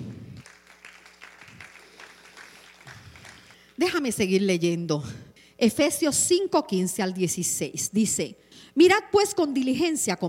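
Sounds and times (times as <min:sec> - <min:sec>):
congregation clapping: 0:00.0 - 0:03.8
speech: 0:03.8 - 0:10.2.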